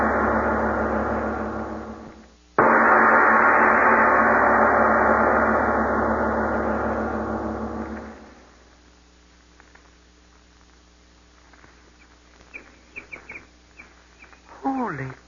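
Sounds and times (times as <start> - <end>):
loud steady roar: 0.0 - 8.5
short bright bird chirps: 12.0 - 15.2.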